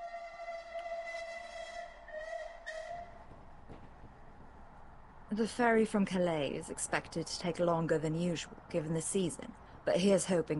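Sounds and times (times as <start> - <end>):
steam train whistle blowing a chord: 0.0 - 3.2
low rumble of the moving train: 0.0 - 10.5
speech: 5.3 - 10.5.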